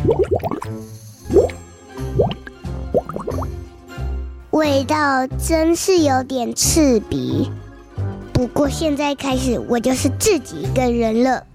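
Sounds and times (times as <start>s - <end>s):
water splashing as someone climbs into a bubble bath: 0.0s - 0.7s, 1.3s - 3.5s
speech: 0.7s - 1.4s, 4.6s - 7.6s, 8.4s - 11.5s.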